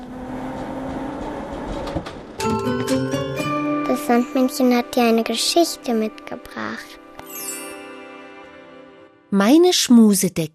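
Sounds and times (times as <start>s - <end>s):
tram rumbling along its rails: 0.0s - 3.1s
speech: 2.0s - 3.2s, 4.0s - 7.0s, 9.3s - 10.5s.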